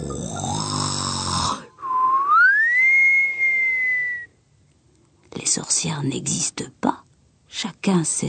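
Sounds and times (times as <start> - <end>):
old woman's deep rasping snore: 0.0 - 1.7
clear high whistle from an old woman's lips: 1.8 - 4.3
speech: 5.6 - 8.2.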